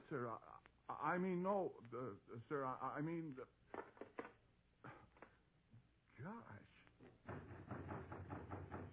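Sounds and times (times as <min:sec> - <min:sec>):
speech: 0:00.1 - 0:03.8, 0:06.2 - 0:07.4
knocking on a door: 0:07.1 - 0:08.9.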